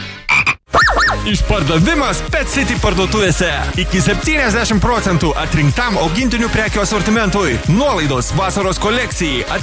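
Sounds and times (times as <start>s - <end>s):
frog croaking in a radio advert: 0.3s - 1.2s
speech: 1.3s - 9.6s.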